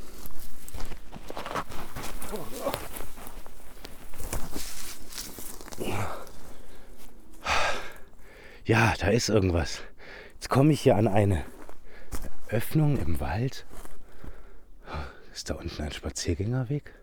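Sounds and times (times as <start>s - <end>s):
steady rustle: 0.0s - 8.5s
footsteps walking down a hill crunching on the woodland floor in a forest: 0.0s - 14.7s
breathy vocal sounds: 2.2s - 3.1s, 5.4s - 9.0s, 14.2s - 15.4s
speech: 8.7s - 11.6s, 12.5s - 13.7s, 15.4s - 17.0s.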